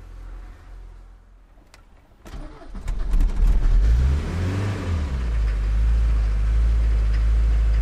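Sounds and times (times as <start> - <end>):
camper van bus engine cranking, starting and revving: 2.2 - 7.7.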